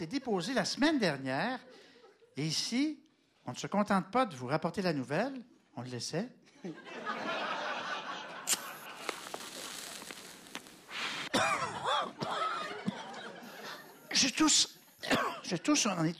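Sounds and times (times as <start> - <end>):
speech: 0.0 - 7.2, 14.2 - 16.1
laughter: 6.5 - 10.1, 11.4 - 15.6
breathy throat clearing: 11.3 - 12.5, 15.0 - 15.5
person coughing: 11.3 - 12.7, 15.0 - 15.6.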